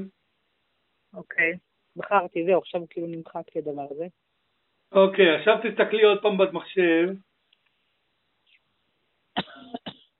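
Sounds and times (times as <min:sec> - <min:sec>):
speech: 0:01.1 - 0:04.2, 0:04.9 - 0:07.3
woman coughing: 0:09.4 - 0:10.1.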